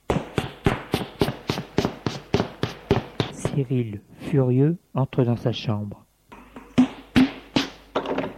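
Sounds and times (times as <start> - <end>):
footsteps going down stairs: 0.0 - 3.8, 6.3 - 8.3
speech: 3.6 - 6.0.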